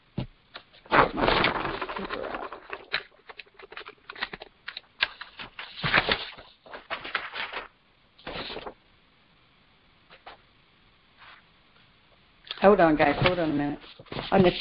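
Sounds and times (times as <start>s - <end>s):
paper sheets being shuffled and handled: 0.6s - 8.8s, 13.0s - 14.6s
speech: 12.6s - 14.6s.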